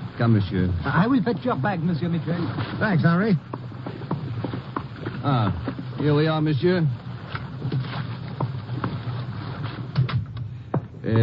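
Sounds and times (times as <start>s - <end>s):
broad wash of moving water: 0.0s - 11.2s
river boat engine droning: 0.0s - 11.2s
speech: 0.2s - 3.6s, 5.2s - 7.0s, 11.1s - 11.2s
light knocks and creaks: 2.3s - 6.4s, 7.0s - 11.2s.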